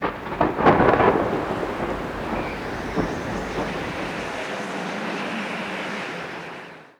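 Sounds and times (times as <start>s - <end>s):
thunder: 0.0s - 4.6s
wind: 0.0s - 6.9s.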